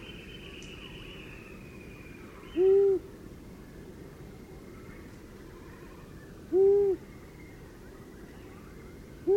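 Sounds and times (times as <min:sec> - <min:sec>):
soft background noise: 0:00.0 - 0:09.3
long-eared owl uttering short deep hoots: 0:06.5 - 0:07.0.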